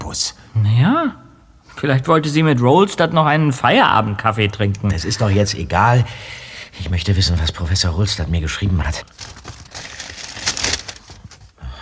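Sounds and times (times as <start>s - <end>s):
speech: 0.1s - 1.2s, 1.8s - 9.3s
small paper note being unfolded: 9.1s - 11.5s.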